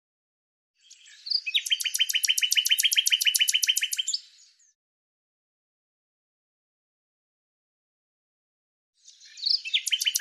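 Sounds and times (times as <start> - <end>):
bird song: 0.8 - 4.8, 9.0 - 10.1.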